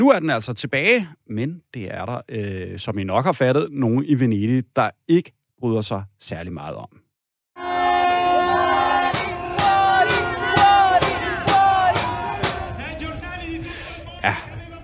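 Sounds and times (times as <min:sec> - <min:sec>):
speech: 0:00.0 - 0:07.0, 0:14.2 - 0:14.8
sustained horn-like tone blaring: 0:07.6 - 0:13.6
crowd of protesters in Venice chanting against cruise ships: 0:07.6 - 0:14.2.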